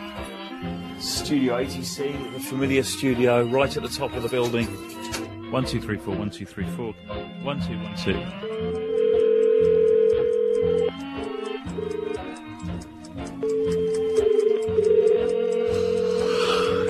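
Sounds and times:
speech: 1.0 - 8.9
regular ticking pulse: 7.3 - 16.8
telephone ringing tone of a call to a public phone box: 8.6 - 11.0, 13.4 - 16.8.

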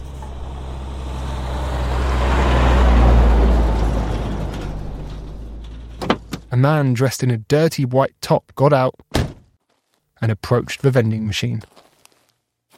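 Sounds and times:
big truck engine drone pulling in: 0.0 - 6.8
sharp mechanical clunks: 4.6 - 6.5
speech: 6.6 - 9.2, 10.2 - 11.8.

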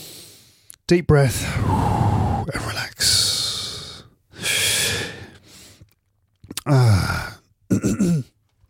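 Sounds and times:
speech: 0.9 - 3.2, 6.6 - 7.3
person choking and snorting after inhaling organic Japanese sencha green tea: 6.5 - 8.3.

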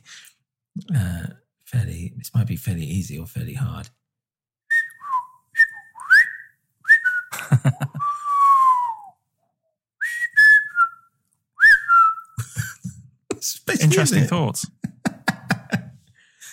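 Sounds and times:
speech: 2.2 - 4.0, 7.6 - 8.0, 13.9 - 14.8
person whistling imitating a robot droid: 4.7 - 7.3, 8.0 - 9.1, 10.0 - 11.0, 11.6 - 12.4
laughter: 7.3 - 8.3, 12.4 - 16.5.

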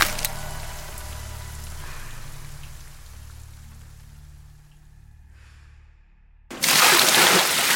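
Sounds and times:
low steady rumble: 0.0 - 6.5
bucket of ice-cold water dumped onto a man's head: 6.5 - 7.7.

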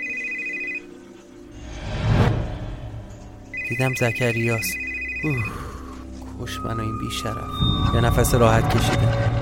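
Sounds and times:
mobile phone ringing with bright electronic tone: 0.0 - 1.3, 3.5 - 6.1
low rumbling whoosh: 1.5 - 3.5
speech: 3.7 - 5.6, 6.4 - 9.4.

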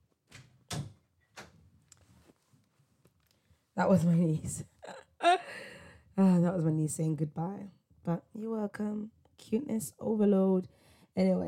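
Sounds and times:
door being shut: 0.3 - 1.6
speech: 3.8 - 4.7, 6.2 - 11.4.

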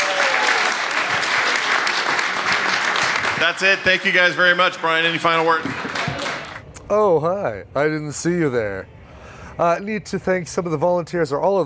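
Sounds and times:
crowd applauding: 0.0 - 6.6
speech: 3.4 - 5.8, 6.9 - 9.0, 9.6 - 11.6.

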